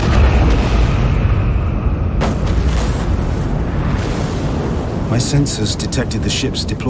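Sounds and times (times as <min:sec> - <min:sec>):
sharp blast cracking: 0:00.0 - 0:05.1
massive thermonuclear explosions rumbling: 0:00.0 - 0:06.3
speech: 0:05.1 - 0:06.8.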